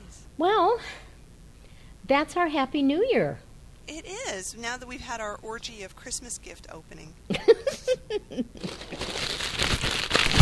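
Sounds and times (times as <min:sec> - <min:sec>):
speech: 0:00.4 - 0:01.0, 0:02.1 - 0:09.2
paper being crumpled up: 0:08.6 - 0:10.4.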